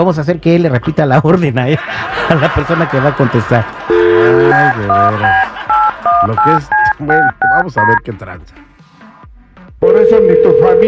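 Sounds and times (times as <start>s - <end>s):
speech: 0.0s - 5.5s, 6.2s - 8.7s, 9.8s - 10.8s
laughter: 1.6s - 7.3s
telephone keypad dialing tones: 3.9s - 8.0s, 9.8s - 10.8s.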